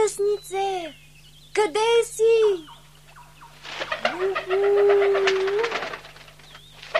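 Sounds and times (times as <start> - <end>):
speech: 1.6 - 2.8, 4.2 - 5.9
single drawn-out dove coo: 2.5 - 6.9.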